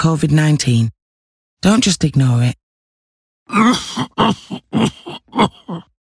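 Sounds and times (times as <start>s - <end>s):
speech: 0.0s - 1.0s, 1.6s - 2.6s, 3.5s - 5.9s
persistent harsh throaty coughing: 3.5s - 5.9s.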